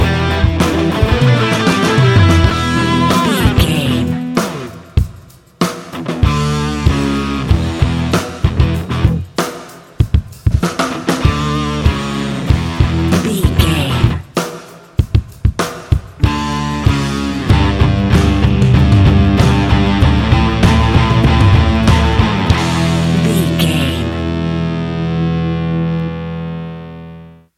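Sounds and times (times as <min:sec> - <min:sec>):
thumping rock bass lines: 0:00.0 - 0:04.4, 0:06.2 - 0:09.3, 0:11.2 - 0:14.2, 0:16.2 - 0:26.2
heavy rock drums: 0:00.0 - 0:25.2.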